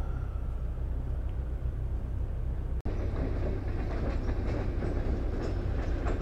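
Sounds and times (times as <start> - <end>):
train rolling across a rail bridge: 0.0 - 6.1
rattling train wheel clatter on a rail bridge: 2.9 - 6.1.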